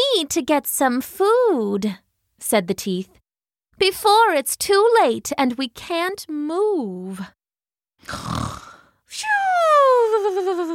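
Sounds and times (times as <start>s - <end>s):
speech: 0.2s - 7.4s, 8.0s - 8.6s, 10.1s - 10.7s
voice imitating a snore: 8.0s - 9.0s.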